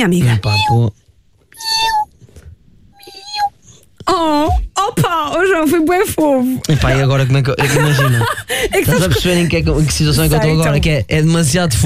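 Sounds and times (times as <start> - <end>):
speech: 0.0 - 1.9, 4.1 - 11.8
woman imitating baby kitten meows: 0.3 - 0.8, 1.6 - 2.1, 3.0 - 3.5
laughter: 6.7 - 10.0.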